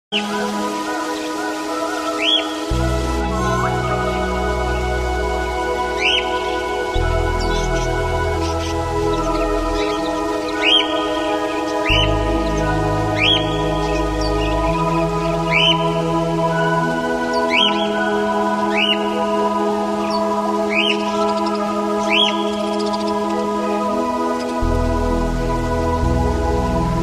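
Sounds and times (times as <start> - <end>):
birds singing as a morning alarm ringtone: 0.1 - 27.0.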